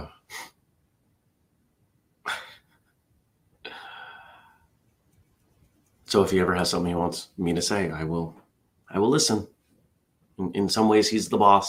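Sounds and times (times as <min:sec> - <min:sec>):
person sneezing: 0:02.3 - 0:02.7
speech: 0:06.1 - 0:09.5, 0:10.4 - 0:11.6.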